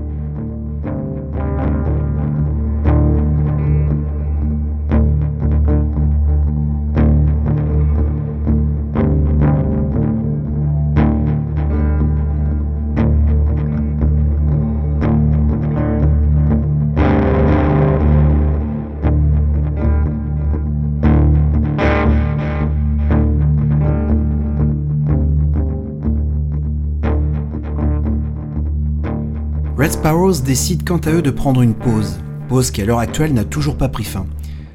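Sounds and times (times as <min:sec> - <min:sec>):
instrumental electric guitar with distortion and layered effects: 0:00.0 - 0:34.7
speech: 0:30.0 - 0:34.6.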